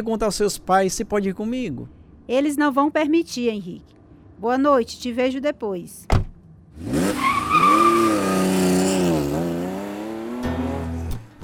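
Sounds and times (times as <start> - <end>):
speech: 0.0 - 6.2, 6.8 - 7.8
1967 Camaro roaring past at night on a road bend: 6.7 - 11.2
1967 Camaro tires screeching in a long skid on a road bend: 6.8 - 10.5.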